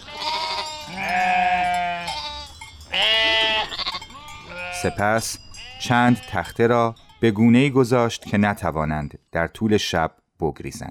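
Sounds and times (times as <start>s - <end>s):
several sheep bleating: 0.0s - 7.4s
speech: 4.8s - 10.8s.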